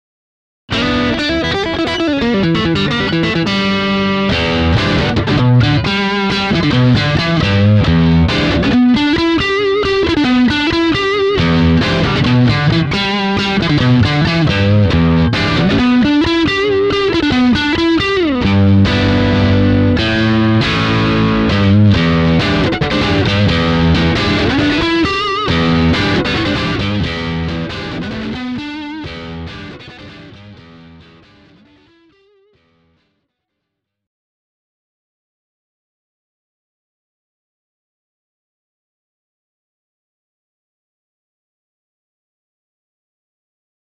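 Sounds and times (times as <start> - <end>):
classic rock Texas blues guitar: 0.7 - 33.2.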